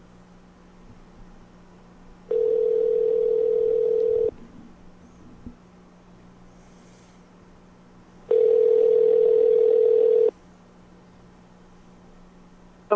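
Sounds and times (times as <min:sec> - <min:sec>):
telephone ringback tone calling a house number: 0:02.3 - 0:04.3, 0:08.3 - 0:10.3.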